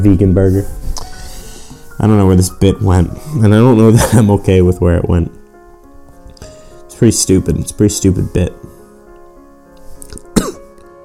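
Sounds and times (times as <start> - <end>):
speech: 0.0 - 0.9, 2.0 - 5.4, 7.0 - 8.7
short throaty cough: 10.3 - 10.7.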